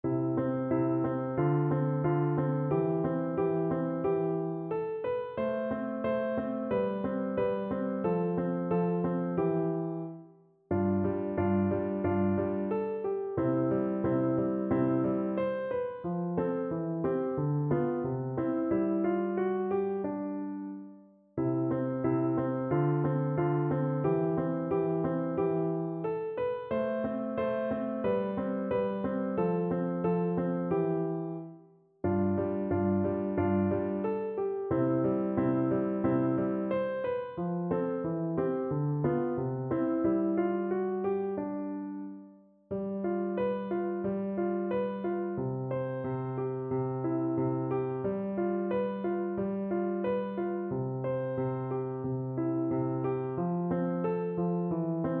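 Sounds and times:
andantino piano piece: 0:00.0 - 0:55.1.

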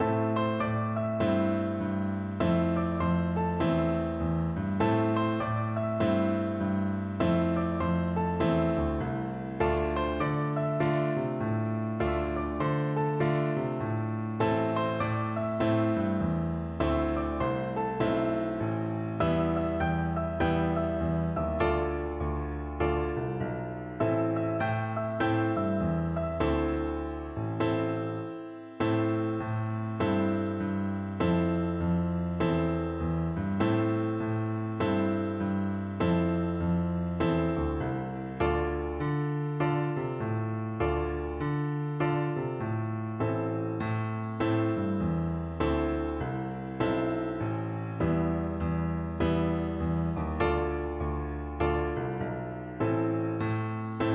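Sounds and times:
cool blues piano duet: 0:00.0 - 0:54.1.

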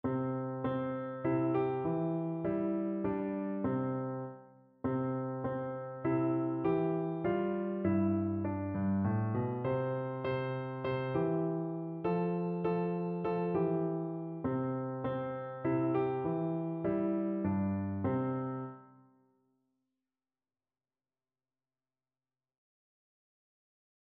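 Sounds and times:
piano piece: 0:00.0 - 0:19.1.

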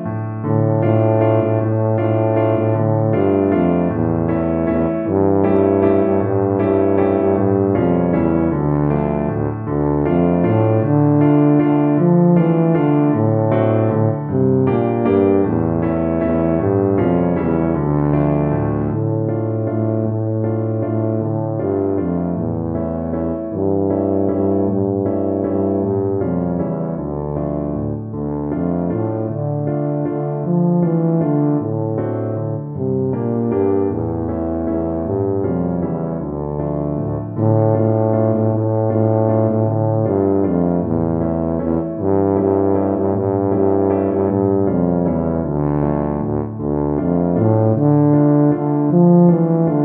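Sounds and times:
tuba playing a folk tune: 0:00.2 - 0:49.8.

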